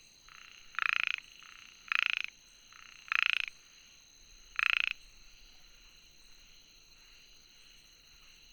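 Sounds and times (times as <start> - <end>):
frog croaking: 0.3 - 5.6.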